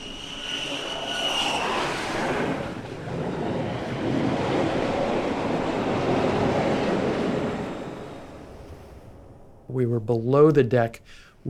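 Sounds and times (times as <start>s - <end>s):
jet launching from an aircraft carrier catapult in the Atlantic: 0.0s - 10.3s
speech: 9.8s - 11.4s.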